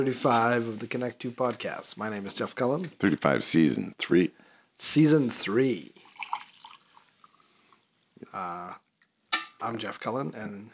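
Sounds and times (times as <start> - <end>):
speech: 0.0 - 6.0, 8.2 - 8.8, 9.6 - 10.7
coffee pouring into a cup: 6.0 - 7.7
coffee drips and trickles into a cup: 6.0 - 7.9.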